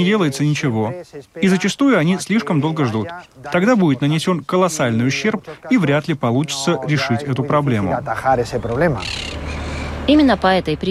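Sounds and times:
speech: 0.0 - 9.4, 10.1 - 10.9
parrots squawking: 8.5 - 10.0
raspy parrot screech: 9.0 - 9.6.

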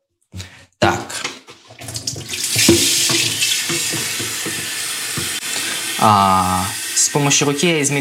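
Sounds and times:
tap water filling a kettle to make tea: 1.5 - 7.6
speech: 6.0 - 7.9.

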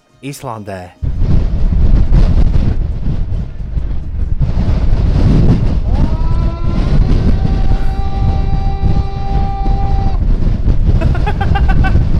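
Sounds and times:
speech: 0.2 - 1.1
harsh gusty wind blowing in Iceland: 1.0 - 12.1
human voice shouting: 5.9 - 10.3
laughter: 11.0 - 12.1.

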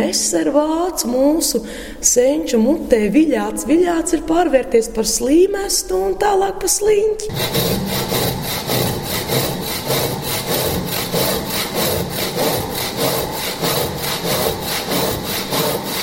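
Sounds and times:
speech: 0.1 - 8.7
hand saw cutting through wood: 7.3 - 16.0.

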